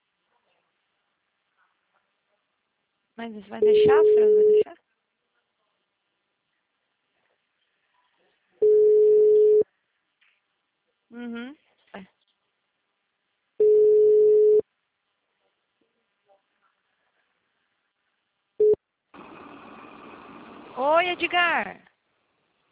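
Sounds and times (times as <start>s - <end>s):
speech: 3.2s - 4.9s
telephone line beeps while placing a call: 3.6s - 4.6s, 8.6s - 9.6s, 13.6s - 14.6s
hissy telephone line noise: 19.2s - 21.4s.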